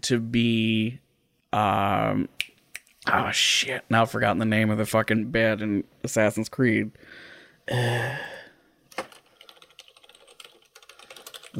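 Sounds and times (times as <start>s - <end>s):
speech: 0.0s - 8.4s
typing on a computer keyboard: 8.9s - 11.5s.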